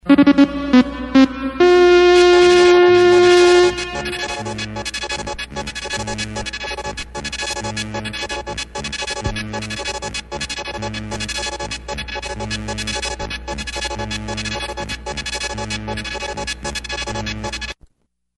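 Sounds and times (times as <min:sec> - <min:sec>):
1960s news sounder jingle: 0:00.1 - 0:05.0.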